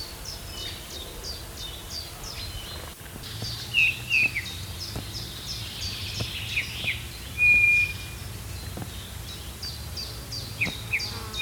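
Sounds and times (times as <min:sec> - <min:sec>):
high chirps from another bird: 0:00.0 - 0:09.8
light background noise: 0:00.0 - 0:11.4
Eurasian bullfinch steady level whistle: 0:06.8 - 0:08.2.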